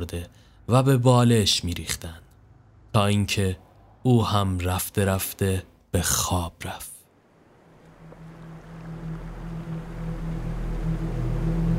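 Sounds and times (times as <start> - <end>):
speech: 0.0 - 2.2, 2.9 - 6.9
stormy sea waves roaring: 7.1 - 11.7.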